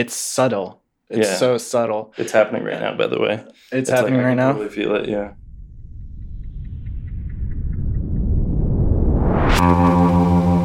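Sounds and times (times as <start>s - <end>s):
speech: 0.0s - 5.4s
sweeping whoosh: 4.6s - 10.2s
loud low rumbling buzzing hum: 4.7s - 9.6s.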